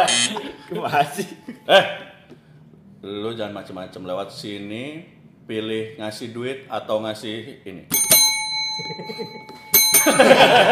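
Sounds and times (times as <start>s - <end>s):
speech: 0.7s - 2.1s, 3.0s - 8.2s, 8.8s - 10.7s
bell ringing with bright metallic tone: 7.9s - 10.7s
laughter: 10.1s - 10.7s.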